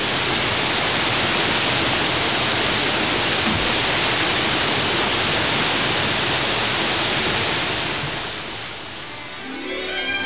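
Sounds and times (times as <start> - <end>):
Niagara Falls waterfall roaring between Lake Erie and Lake Ontario: 0.0 - 10.2.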